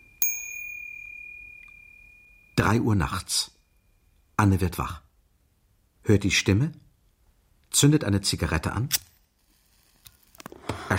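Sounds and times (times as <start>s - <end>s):
small golden bell on an ornate Louis XIV clock struck by a gilded shepherd figure: 0.0s - 4.2s
speech: 2.6s - 3.6s, 4.4s - 5.0s, 6.0s - 6.8s, 7.7s - 9.1s.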